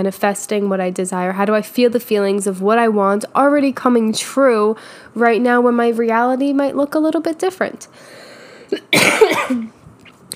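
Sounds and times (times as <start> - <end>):
speech: 0.0 - 9.8
breath: 4.8 - 5.2, 7.9 - 8.8
person coughing harshly: 8.7 - 9.8.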